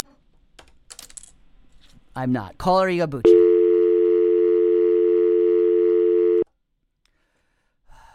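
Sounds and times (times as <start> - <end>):
speech: 2.2 - 3.4
telephone dial tone after a dropped call: 3.3 - 6.4.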